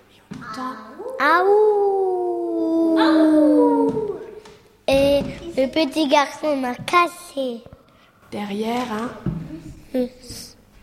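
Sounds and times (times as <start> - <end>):
speech: 0.5 - 1.8, 5.6 - 7.7, 8.3 - 9.3, 9.9 - 10.5
wolf howling: 1.0 - 4.4.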